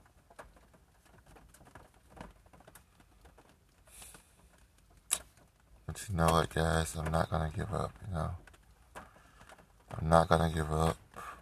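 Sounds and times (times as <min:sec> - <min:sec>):
rain pattering: 0:00.0 - 0:11.4
speech: 0:06.0 - 0:08.4, 0:10.1 - 0:11.0.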